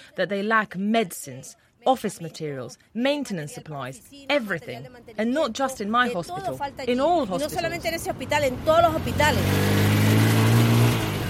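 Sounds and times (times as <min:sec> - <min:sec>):
speech: 0:00.2 - 0:09.9
motorbike taxi engine revving in Caracas: 0:08.0 - 0:11.2.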